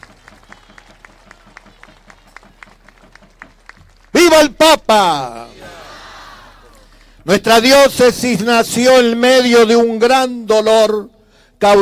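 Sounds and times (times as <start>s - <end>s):
crowd clapping rhythmically at a religious gathering for a papal visit: 0.0s - 7.2s
speech: 4.3s - 5.4s, 7.3s - 11.8s.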